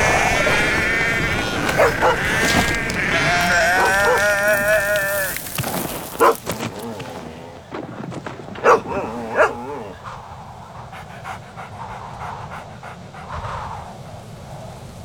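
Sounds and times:
breathy sounds: 0:00.0 - 0:10.2
faint rustling outdoors: 0:00.3 - 0:10.2
dog barking: 0:01.4 - 0:07.3, 0:08.6 - 0:10.0.

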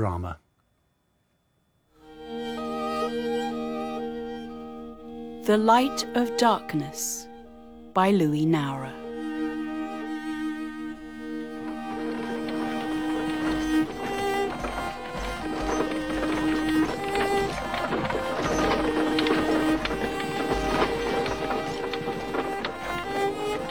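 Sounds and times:
speech: 0:00.0 - 0:00.4, 0:05.4 - 0:07.3, 0:08.0 - 0:09.0
sustained tonal sounds: 0:02.0 - 0:23.6
wagons rolling down the main street: 0:02.6 - 0:23.6
horses' hooves clattering down the main street: 0:08.8 - 0:23.6.

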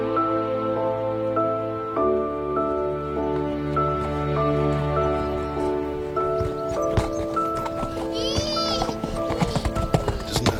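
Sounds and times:
hooves of a horse cantering: 0:00.2 - 0:10.5
high whinny-like cry: 0:08.1 - 0:09.5.

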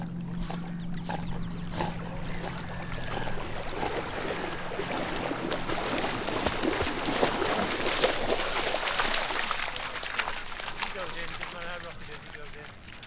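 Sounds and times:
dog snorting while swimming: 0:00.0 - 0:08.0
water splashing from dog swimming in sea: 0:00.0 - 0:13.0.

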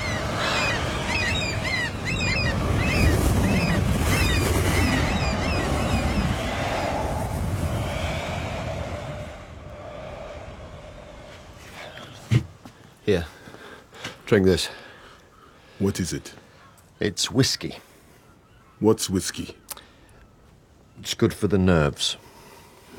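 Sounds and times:
birds honking: 0:00.0 - 0:06.4
whirlwind roaring over open water: 0:00.0 - 0:12.6
speech: 0:13.1 - 0:13.3, 0:14.3 - 0:14.8, 0:15.8 - 0:16.4, 0:17.0 - 0:17.9, 0:18.8 - 0:19.6, 0:21.0 - 0:22.2.

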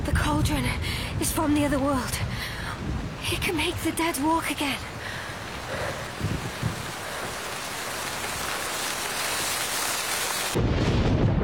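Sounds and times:
low rumbling thunder: 0:00.0 - 0:11.4
steady heavy rain hissing: 0:00.0 - 0:11.4
speech: 0:00.4 - 0:04.9.

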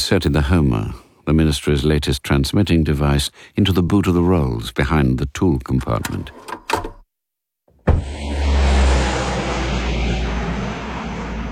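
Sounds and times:
speech: 0:00.1 - 0:06.6
airplane engine roar as plane departs: 0:08.0 - 0:11.5.

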